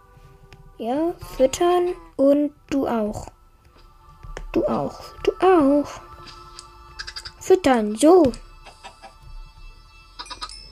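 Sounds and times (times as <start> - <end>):
speech: 0.8 - 3.4, 4.5 - 6.1, 7.5 - 8.4
chickens clucking in a video game: 8.6 - 9.2.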